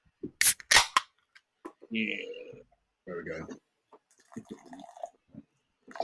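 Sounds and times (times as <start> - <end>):
beer cans cracking open: 0.4 - 1.1
beer gurgling as it is poured: 3.3 - 6.0.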